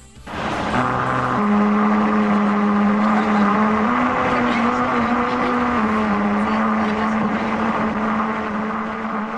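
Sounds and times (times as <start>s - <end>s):
car rubber tires humming on a grooved musical road surface: 0.2s - 9.3s.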